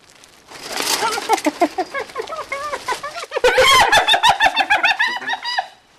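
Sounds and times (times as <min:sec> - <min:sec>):
spotted hyenas giggling at a zoo: 0:01.0 - 0:05.7.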